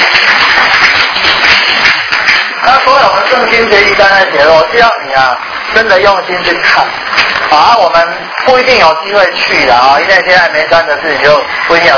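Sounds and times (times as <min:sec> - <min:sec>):
crowd clapping: 0:00.0 - 0:04.2, 0:05.4 - 0:08.9
speech: 0:03.4 - 0:11.9.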